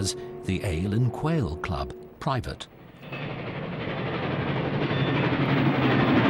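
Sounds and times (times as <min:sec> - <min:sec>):
speech: 0:00.0 - 0:03.2
train carriage rumbling along the rails: 0:03.0 - 0:06.2.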